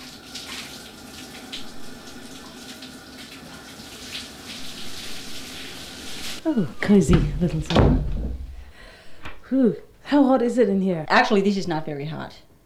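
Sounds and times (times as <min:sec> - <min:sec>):
shower spraying water beside a sauna: 0:00.0 - 0:08.8
speech: 0:06.4 - 0:08.1, 0:09.5 - 0:12.5.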